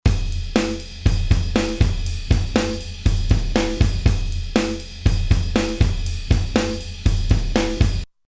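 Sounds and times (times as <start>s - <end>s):
vintage drums: 0.0s - 8.1s.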